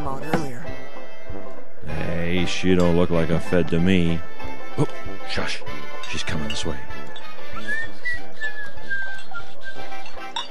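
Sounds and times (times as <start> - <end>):
low rhythmic thumps: 0.0 - 10.3
speech: 0.1 - 0.5, 2.4 - 7.1
woman whistling to catch someone's attention: 7.6 - 10.1.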